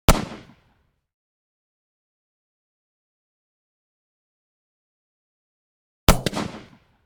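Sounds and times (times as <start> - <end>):
close 12 gauge shotgun blast: 0.1 - 0.6, 6.1 - 6.9.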